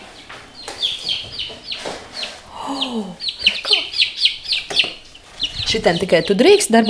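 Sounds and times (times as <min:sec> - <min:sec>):
chicks cheeping under a heat lamp: 0:00.0 - 0:06.8
speech: 0:05.7 - 0:06.8.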